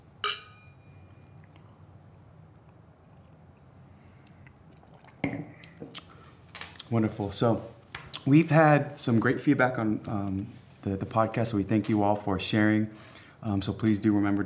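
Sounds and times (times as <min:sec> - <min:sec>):
quiet hum: 0:00.0 - 0:14.4
glasses clinking together in a toast: 0:00.2 - 0:00.9, 0:05.2 - 0:05.5
speech: 0:06.9 - 0:14.4.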